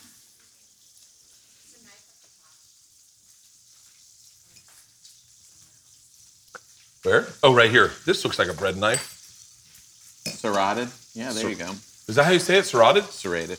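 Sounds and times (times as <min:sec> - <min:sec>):
bacon frying in a pan: 0:00.0 - 0:13.5
speech: 0:07.0 - 0:09.1, 0:10.4 - 0:13.5.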